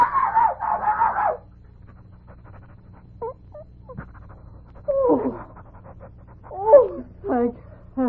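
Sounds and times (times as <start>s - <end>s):
small dog giving high shrill barks: 0.0s - 1.5s
small dog panting and whimpering softly: 1.8s - 7.6s.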